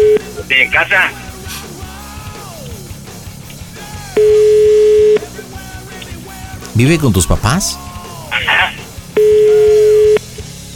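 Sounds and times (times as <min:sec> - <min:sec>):
telephone ringing tone: 0:00.0 - 0:01.1, 0:04.2 - 0:05.2, 0:08.4 - 0:10.3
faint music: 0:00.0 - 0:10.7
speech: 0:00.6 - 0:01.2, 0:06.8 - 0:07.8.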